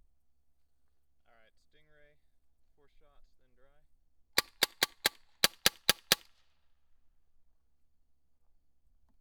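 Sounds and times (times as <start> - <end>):
stingray gunshots: 4.4 - 6.3.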